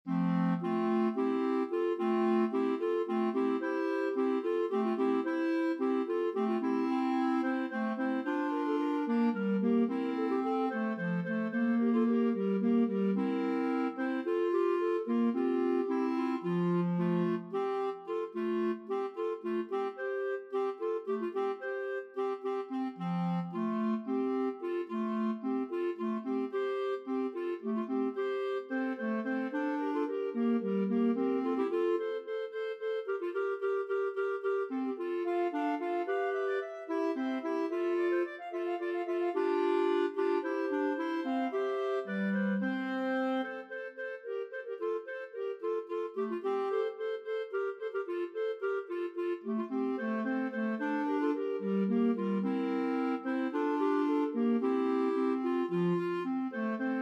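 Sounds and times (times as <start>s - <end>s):
clarinet trio: 0.0s - 56.9s.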